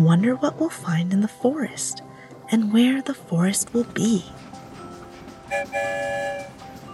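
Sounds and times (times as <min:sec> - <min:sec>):
speech: 0:00.0 - 0:04.5, 0:05.5 - 0:06.6
train whistle toot: 0:05.5 - 0:06.6.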